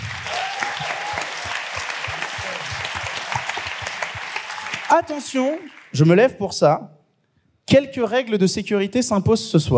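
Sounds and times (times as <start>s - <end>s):
crowd applauding with dense clapping: 0.0s - 6.1s
speech: 4.9s - 7.0s, 7.7s - 9.7s.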